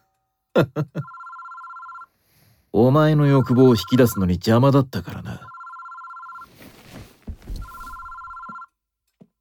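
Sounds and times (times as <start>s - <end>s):
speech: 0.6s - 1.2s, 2.7s - 5.5s
telephone ringing: 1.0s - 2.1s, 3.2s - 4.3s, 5.4s - 6.5s, 7.6s - 8.7s
low thumps and rustling: 6.6s - 7.9s.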